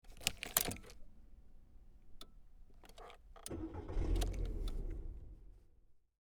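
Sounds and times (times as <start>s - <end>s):
car engine starting heard from inside the car: 2.4s - 6.0s.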